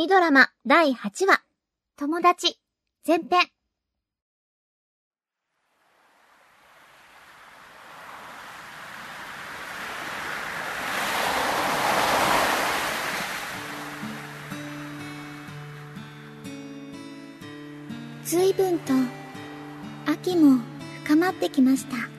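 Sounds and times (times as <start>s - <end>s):
speech: 0.0s - 3.6s, 18.3s - 19.2s, 20.1s - 22.1s
wave breaking on a beach in late autumn: 5.5s - 16.6s, 17.7s - 21.1s.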